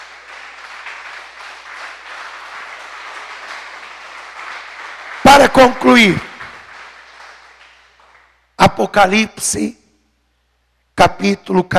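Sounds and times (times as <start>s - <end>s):
crowd applauding: 0.0s - 8.4s
speech: 5.3s - 6.3s, 8.7s - 9.8s, 11.0s - 11.7s.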